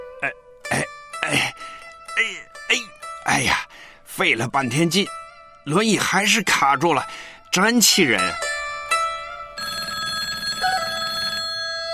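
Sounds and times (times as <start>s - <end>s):
speech: 0.2s - 1.5s, 2.2s - 8.5s
landline telephone bell ringing at home: 9.6s - 11.9s.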